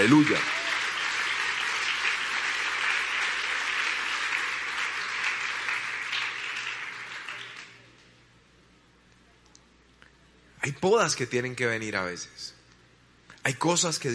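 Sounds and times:
speech: 0.0 - 0.6, 10.6 - 12.6, 13.4 - 14.1
church audience applauding in praise to God: 0.0 - 7.9.

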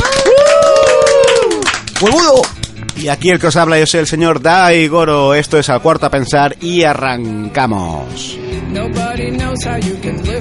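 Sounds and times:
whooping cheer: 0.0 - 1.8
small group applauding: 0.0 - 3.1
speech: 2.0 - 10.3.

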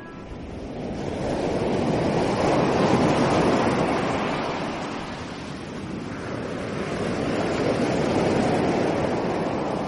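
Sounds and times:
sea waves breaking on shore: 0.0 - 9.8.

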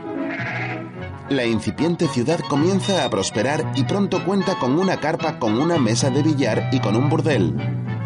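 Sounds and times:
several sheep bleating loudly: 0.2 - 0.9
speech: 1.3 - 7.9.

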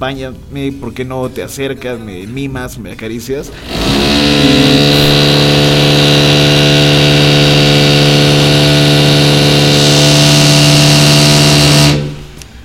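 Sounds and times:
speech: 0.0 - 5.5
steady mechanical drone from repair work next door: 3.3 - 12.6.

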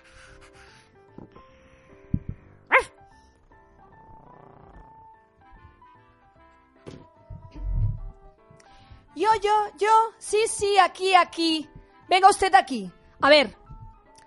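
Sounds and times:
dog barking: 2.7 - 3.0
speech: 9.4 - 13.6.

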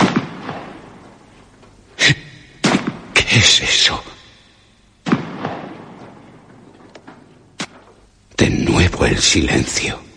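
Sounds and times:
sharp crack: 0.0 - 1.1, 2.6 - 3.2, 5.0 - 8.0
distant explosions: 0.0 - 1.2, 5.0 - 7.8
speech: 3.4 - 4.2, 9.0 - 10.1.

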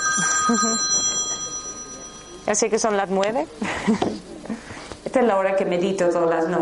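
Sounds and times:
mobile phone alarm ringing with electronic tones: 0.0 - 2.6
laughter: 0.2 - 1.4, 3.6 - 4.6
speech: 0.5 - 1.0, 2.5 - 4.3, 5.2 - 6.5.

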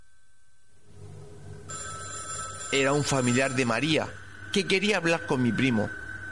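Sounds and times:
telephone ringing in a house: 1.7 - 4.7
speech: 2.7 - 6.0.

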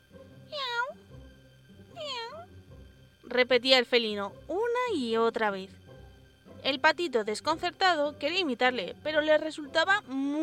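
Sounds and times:
kitten meowing softly: 1.9 - 2.5
speech: 3.3 - 5.8, 6.6 - 10.4.

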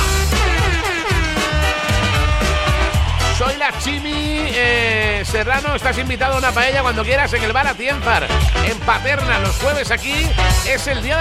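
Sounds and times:
air horn blaring: 0.0 - 5.0
pulsing music: 0.0 - 11.1
speech: 3.8 - 11.1.

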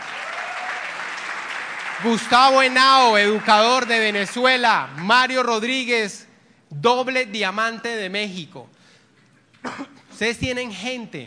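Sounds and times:
audience applause: 0.0 - 5.1
speech: 2.0 - 8.8, 9.6 - 11.2.

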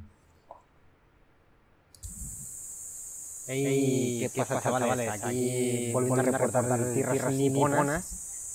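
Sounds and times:
cicadas buzzing: 2.0 - 8.5
speech: 3.5 - 8.3.

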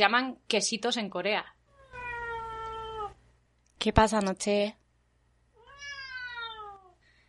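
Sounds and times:
speech: 0.0 - 1.6, 3.8 - 4.8
cat meowing: 1.7 - 3.2, 5.6 - 7.0.

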